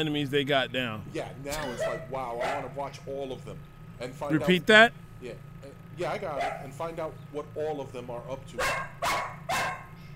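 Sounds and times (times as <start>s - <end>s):
speech: 0.0s - 9.3s
dog barking in a recording room: 1.6s - 2.9s, 6.2s - 6.8s, 8.6s - 10.0s.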